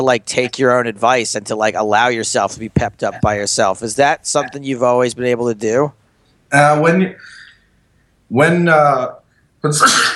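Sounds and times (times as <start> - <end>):
speech: 0.0 - 7.4, 8.3 - 10.1
sneezes: 9.7 - 10.1.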